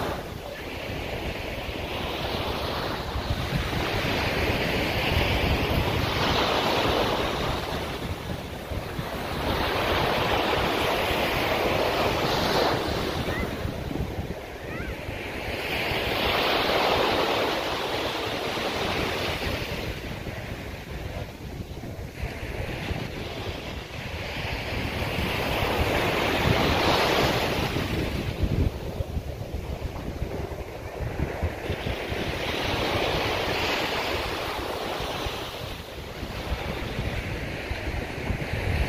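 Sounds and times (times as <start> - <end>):
Pacific sea surf breaking along a shore in Honduras: 0.0 - 38.8
gusts of wind buffeting the microphone: 0.0 - 38.8.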